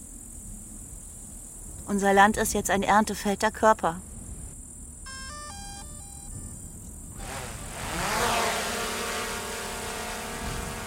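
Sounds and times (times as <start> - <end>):
speech: 1.9 - 4.1
drone propellers buzzing in flight: 7.1 - 10.8.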